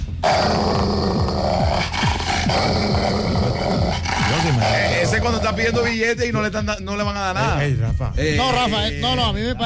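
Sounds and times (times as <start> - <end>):
dog growling and snarling: 0.2 - 5.9
speech: 5.5 - 9.6.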